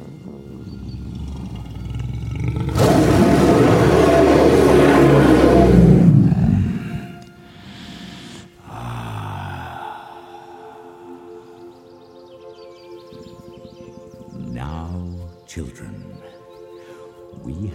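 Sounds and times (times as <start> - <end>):
loud roar: 0.7 - 7.1.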